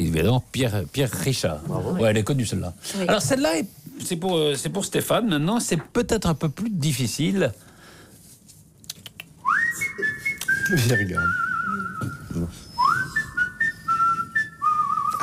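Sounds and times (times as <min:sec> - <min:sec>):
noise: 0:00.0 - 0:15.2
speech: 0:00.2 - 0:07.7, 0:10.7 - 0:11.4, 0:12.0 - 0:12.6
whistled film theme melody: 0:09.4 - 0:15.2.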